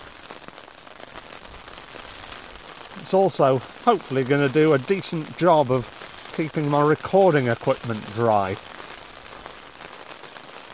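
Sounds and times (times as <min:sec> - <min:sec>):
wind-driven rain beating on an umbrella on open moorland: 0:00.0 - 0:10.7
speech: 0:03.0 - 0:08.7.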